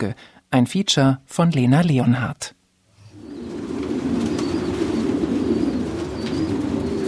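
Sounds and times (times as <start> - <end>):
speech: 0.0 - 2.6
flock of homing pigeons cooing: 3.0 - 7.0.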